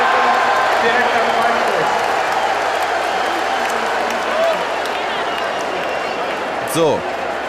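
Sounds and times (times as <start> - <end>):
scattered clapping: 0.0 - 6.5
large stadium crowd roaring and cheering: 0.0 - 7.4
speech: 0.8 - 2.0, 6.8 - 7.1.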